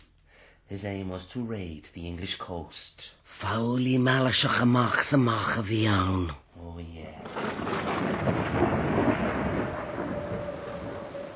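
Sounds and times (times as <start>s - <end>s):
speech: 0.7s - 9.3s
rumbling thunder in a storm at sea: 7.2s - 11.3s
rushing wind-driven rain at sea: 7.2s - 11.3s.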